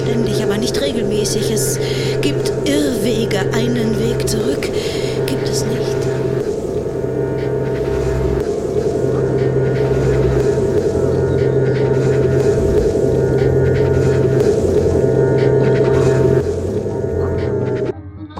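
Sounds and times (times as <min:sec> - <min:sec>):
frozen lake ice groaning with a deep rumbling drone: 0:00.0 - 0:17.8
eerie sweeping pings from frozen lake ice: 0:00.0 - 0:17.9
speech: 0:00.1 - 0:06.3.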